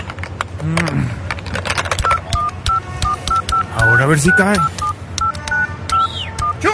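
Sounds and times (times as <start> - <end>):
speech: 0.6 - 1.2, 4.1 - 4.9
telephone keypad tones dialing with a phone card: 2.0 - 6.7.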